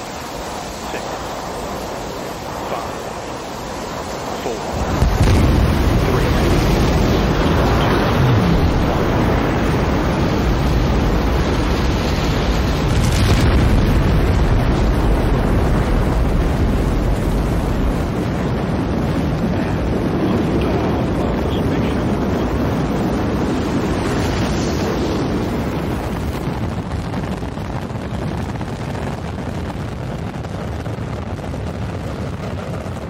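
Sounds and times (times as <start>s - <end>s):
rocket engine roar with hiss: 0.0s - 33.0s.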